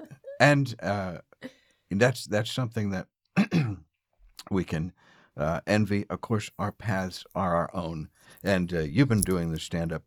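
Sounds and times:
speech: 0.4s - 3.8s, 4.4s - 10.0s
person clearing throat: 3.4s - 3.8s.

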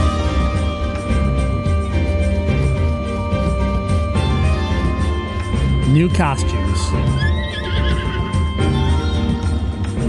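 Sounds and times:
video game music: 0.0s - 10.0s
speech: 6.0s - 7.2s
horse neighing in video game: 6.9s - 8.6s.

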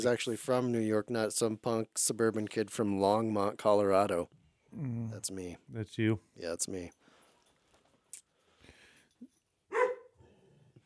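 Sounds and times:
speech: 0.0s - 7.0s
dogs yipping: 9.7s - 10.1s
dogs barking: 9.7s - 10.2s.

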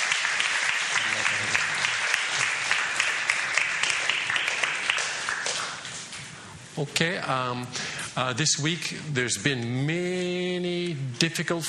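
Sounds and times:
large crowd clapping: 0.0s - 6.1s
speech: 6.8s - 11.6s.

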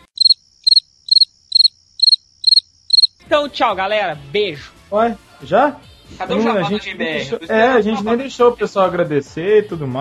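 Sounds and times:
cricket chirping in short trilled bursts: 0.0s - 3.2s
speech: 3.3s - 9.9s.

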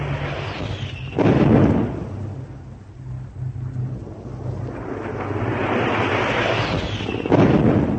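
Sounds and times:
continuous low rumble: 0.0s - 7.9s
bombs exploding in a direct hit on a destroyer during an air attack: 0.2s - 2.6s, 4.9s - 7.9s.

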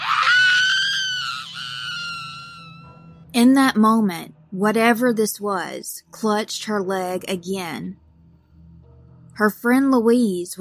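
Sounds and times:
woman screaming in terror: 0.0s - 2.8s
speech: 3.4s - 8.0s, 9.4s - 10.5s.

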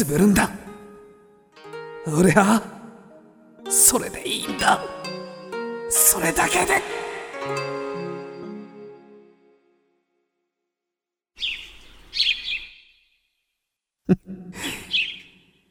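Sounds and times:
speech: 0.0s - 0.6s, 2.0s - 2.8s, 3.7s - 5.2s, 5.9s - 7.8s
sparrow chirping in bright twittering: 11.4s - 13.0s.

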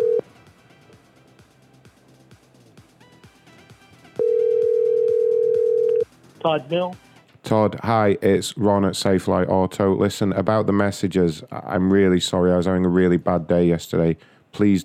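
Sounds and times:
ringback tone of an outgoing telephone call: 0.0s - 0.2s, 4.2s - 6.0s
speech: 6.4s - 14.8s.

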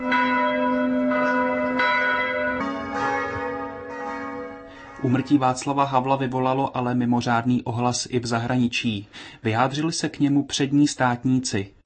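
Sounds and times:
church bells ringing: 0.0s - 6.6s
speech: 5.0s - 11.8s.

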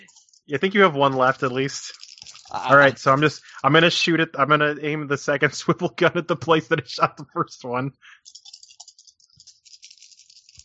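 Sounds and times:
dice rattling and falling off table: 0.0s - 3.3s, 8.3s - 10.6s
speech: 0.5s - 8.4s.

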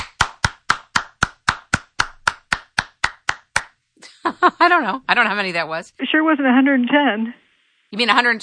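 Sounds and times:
hands clapping rapidly: 0.0s - 3.8s
speech: 4.4s - 8.4s.

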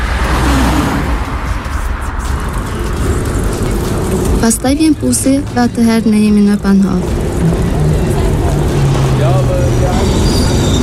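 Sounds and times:
car engine with road rumble: 0.0s - 10.8s
speech: 4.5s - 7.6s.

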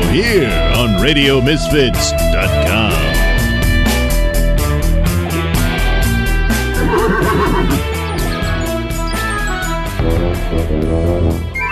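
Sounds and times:
loud steady upbeat music with a driving beat: 0.0s - 11.6s
speech: 0.1s - 3.0s
horse whinnying with a wavering shaky pitch: 6.7s - 7.9s.

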